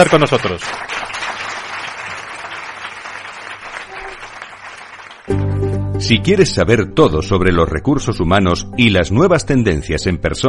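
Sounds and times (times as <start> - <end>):
speech: 0.0 - 1.1, 6.1 - 10.4
many people applauding: 0.0 - 5.6.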